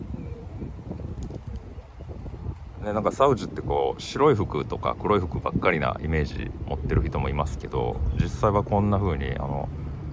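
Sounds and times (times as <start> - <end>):
pigeons cooing outdoors: 0.0 - 2.5
steady wind: 0.0 - 10.1
speech: 2.8 - 9.8.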